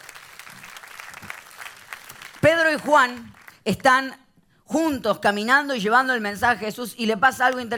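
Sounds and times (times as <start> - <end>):
church audience applauding: 0.0 - 3.6
speech: 2.4 - 7.7.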